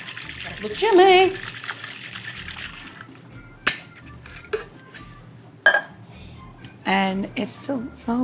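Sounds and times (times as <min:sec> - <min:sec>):
puree mixture sloshing in a cocktail shaker dry-shaken without ice: 0:00.0 - 0:03.2
speech: 0:00.5 - 0:01.5, 0:06.9 - 0:08.2.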